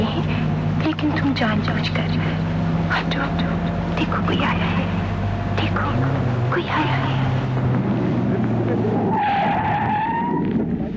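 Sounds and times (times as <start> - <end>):
car engine rumble: 0.0 - 10.9
speech: 0.8 - 5.0, 5.6 - 7.7, 8.7 - 9.7
car tires squealing under hard braking at a traffic light: 2.9 - 10.9.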